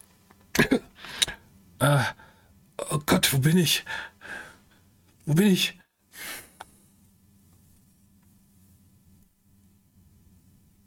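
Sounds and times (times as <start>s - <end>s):
person coughing: 0.6s - 2.2s
speech: 1.8s - 2.2s, 2.9s - 4.1s, 5.3s - 6.4s.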